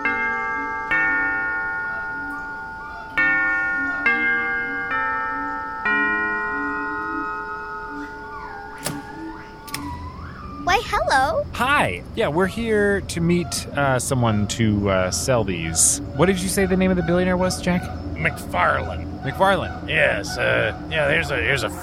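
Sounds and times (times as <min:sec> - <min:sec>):
doorbell chime at an opulent mansion on a tropical island: 0:00.0 - 0:09.4
speech: 0:10.9 - 0:21.8.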